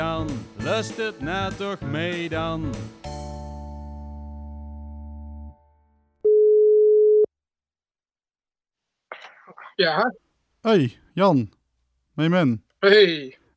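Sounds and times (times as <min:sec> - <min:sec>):
speech: 0:00.2 - 0:03.2, 0:09.8 - 0:11.6, 0:12.2 - 0:13.5
telephone ringback tone while placing a call: 0:06.3 - 0:07.3.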